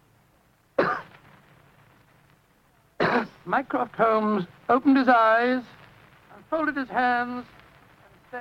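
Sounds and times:
person coughing: 0.8s - 1.1s, 3.0s - 3.4s
speech: 3.4s - 5.8s, 6.5s - 7.6s.

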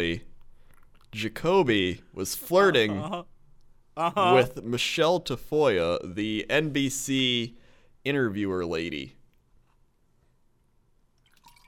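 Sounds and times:
speech: 0.0s - 0.3s, 1.1s - 3.3s, 4.0s - 9.2s
person sipping and swallowing water: 11.2s - 11.6s.

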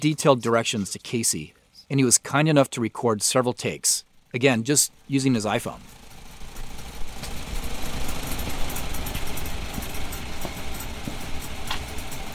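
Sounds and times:
speech: 0.0s - 6.0s
old Farmall Model A farm tractor engine running on a farm: 4.1s - 12.3s.

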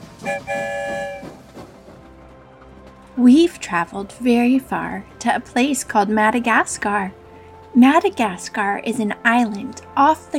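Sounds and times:
train horn toot and sustained blast: 0.0s - 1.5s
train rolling along: 0.0s - 10.3s
speech: 3.2s - 7.2s, 7.8s - 10.3s.

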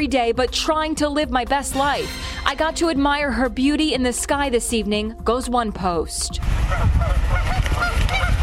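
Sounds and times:
speech: 0.0s - 7.4s
large flock of geese honking: 6.7s - 8.4s.

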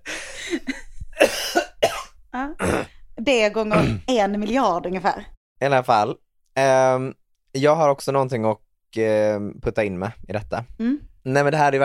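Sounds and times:
harsh coughs: 1.2s - 2.9s, 3.7s - 4.1s
speech: 3.2s - 11.8s.

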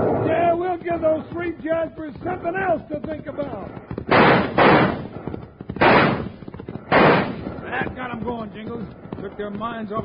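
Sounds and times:
speech: 1.0s - 4.9s, 7.7s - 10.0s
six-gun fire in a Western shootout: 4.1s - 7.9s.

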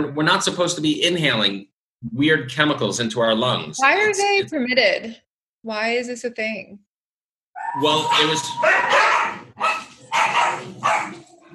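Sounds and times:
speech: 0.0s - 6.9s, 7.6s - 9.8s
dogs barking at someone walking past the house: 7.6s - 11.5s.

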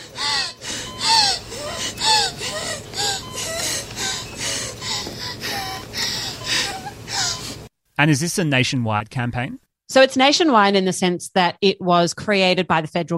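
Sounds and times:
woman in her 20s on a ventilator gasping for air: 0.0s - 7.7s
steady mechanical hum: 0.0s - 8.4s
speech: 8.0s - 13.1s.

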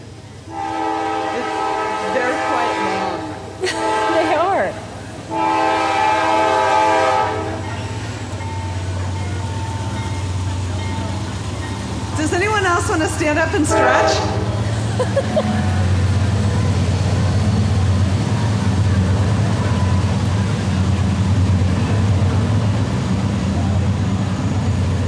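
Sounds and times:
passing train rumble: 0.0s - 25.0s
rail cars rolling by and rattling: 0.0s - 25.0s
train horn blasts: 0.4s - 8.0s, 13.5s - 14.6s
laughter: 3.6s - 4.7s, 14.4s - 16.2s
speech: 13.2s - 14.3s.

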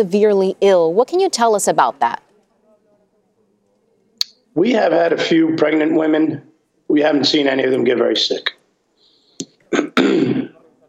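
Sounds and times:
speech: 0.0s - 2.2s, 4.6s - 8.6s
person coughing: 9.7s - 10.6s
rough throat-clearing hack: 9.7s - 10.6s.

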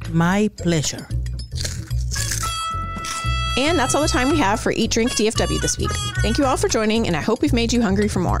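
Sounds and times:
speech: 0.1s - 1.2s, 3.6s - 8.3s
crunching of a Flamin' Hot Cheeto being chewed: 1.5s - 3.3s.

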